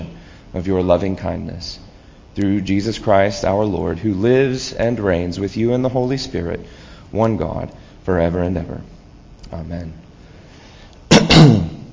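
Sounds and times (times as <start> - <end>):
speech: 0.6 - 10.0
loud cough: 11.1 - 11.9.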